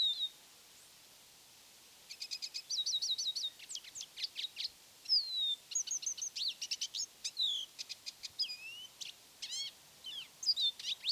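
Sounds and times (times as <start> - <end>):
Lesser goldfinch song: 0.0 - 0.4, 2.1 - 11.0.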